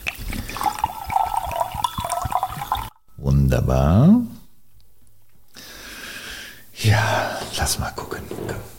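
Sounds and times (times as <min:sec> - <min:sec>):
rosé wine pouring into a glass: 0:00.0 - 0:03.0
speech: 0:03.5 - 0:04.3, 0:06.8 - 0:08.7.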